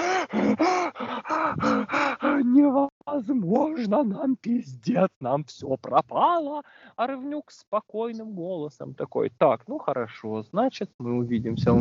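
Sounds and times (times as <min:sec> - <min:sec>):
person imitating a woman's nervous heavy gasping breaths: 0:00.0 - 0:02.6, 0:06.6 - 0:07.0
speech: 0:02.4 - 0:11.7.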